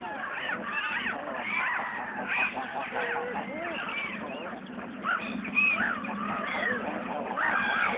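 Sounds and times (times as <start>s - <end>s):
eiders crooning calls: 0.0s - 7.9s.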